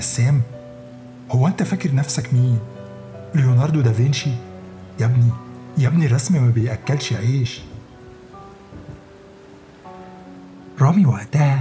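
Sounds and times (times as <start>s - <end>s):
speech: 0.0s - 0.6s, 1.3s - 7.7s, 10.8s - 11.5s
steady rain hissing through a thunderstorm: 0.0s - 11.5s
low rumble of thunder: 5.1s - 10.4s.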